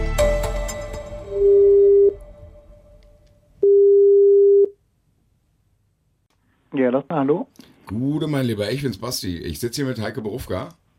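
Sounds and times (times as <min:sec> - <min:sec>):
telephone ringback tone during an outgoing call: 0:01.4 - 0:02.2, 0:03.6 - 0:04.7
speech: 0:06.8 - 0:10.9.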